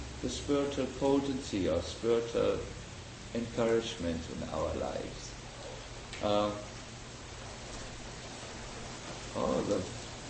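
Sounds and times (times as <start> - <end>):
hiss of wind and rain from an early monsoon shower in Gainesville: 0.0 - 10.2
speech: 0.2 - 5.3, 6.2 - 6.7, 9.4 - 10.0.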